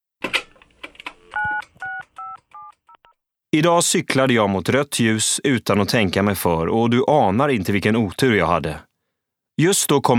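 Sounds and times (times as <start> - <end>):
quick clicks of a phone being dialed: 0.2 - 3.2
touch-tone beeps of a phone number being dialed: 1.3 - 3.0
speech: 3.5 - 8.9, 9.6 - 10.1.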